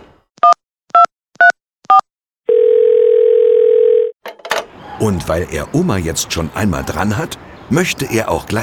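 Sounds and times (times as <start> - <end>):
long steady telephone ringing tone on the line: 2.5 - 4.2
speech: 5.0 - 8.6.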